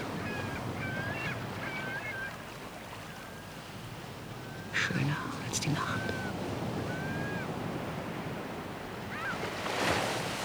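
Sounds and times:
ocean waves rolling in as surf: 0:00.0 - 0:10.4
wind: 0:00.0 - 0:10.4
speech: 0:04.8 - 0:06.2.

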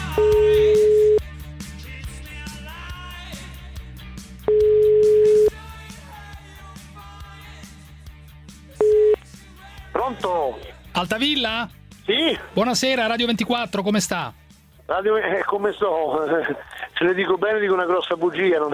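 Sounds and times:
telephone ringing tones while a number is being called: 0:00.2 - 0:01.2, 0:04.5 - 0:05.5, 0:08.8 - 0:09.2
speech: 0:11.4 - 0:18.7.

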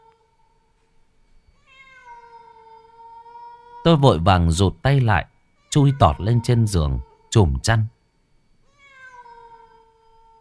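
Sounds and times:
stray cat yowling mournfully: 0:01.6 - 0:03.9, 0:05.6 - 0:07.3, 0:08.7 - 0:10.3
speech: 0:03.8 - 0:08.0.

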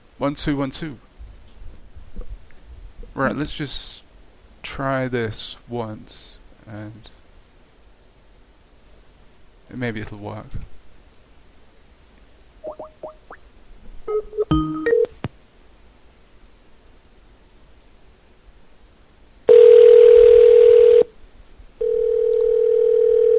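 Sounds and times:
speech: 0:00.2 - 0:01.0, 0:03.2 - 0:04.0, 0:04.6 - 0:07.2, 0:09.7 - 0:10.7
telephone ringing tones: 0:19.5 - 0:21.1, 0:21.8 - 0:23.3.

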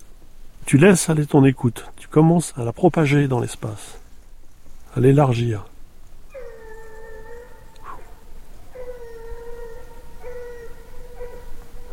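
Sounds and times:
low hiss: 0:00.0 - 0:11.9
speech: 0:00.7 - 0:04.0, 0:05.0 - 0:05.7
dog howling: 0:06.3 - 0:11.9.

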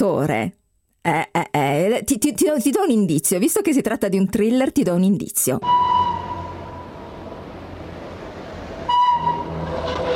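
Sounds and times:
speech: 0:00.0 - 0:06.2
train whistle blast: 0:05.6 - 0:07.0, 0:08.8 - 0:10.1
train passing: 0:05.6 - 0:10.1.

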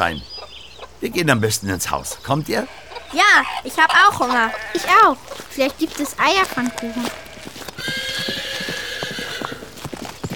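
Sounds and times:
speech: 0:00.0 - 0:00.3, 0:01.0 - 0:07.2
horses clip-clopping: 0:02.7 - 0:10.3
horse whinnying: 0:06.7 - 0:09.8.

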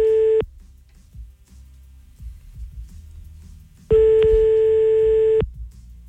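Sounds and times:
French telephone ringback tone: 0:00.0 - 0:00.4, 0:03.9 - 0:05.4.

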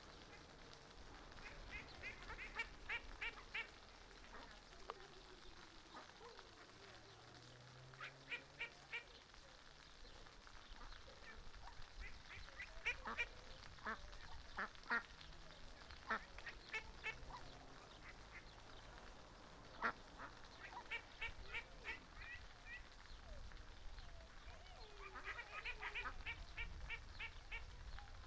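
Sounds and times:
flowing water of a small park river: 0:00.0 - 0:28.2
Mallards of all ages quacking and peeping at a small park river: 0:00.1 - 0:04.6, 0:07.9 - 0:09.2, 0:10.6 - 0:28.2.

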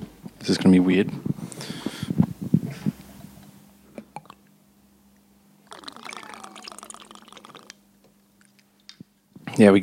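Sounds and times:
speech: 0:00.4 - 0:01.2, 0:09.6 - 0:09.8
liquid pouring into a shot glass: 0:05.7 - 0:07.8.

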